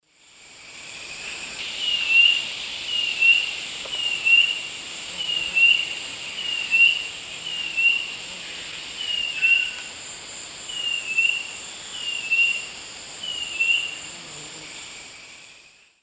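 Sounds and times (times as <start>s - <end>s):
Laniocera hypopyrra singing in South American eastern lowlands: 1.2s - 9.9s, 10.7s - 14.0s.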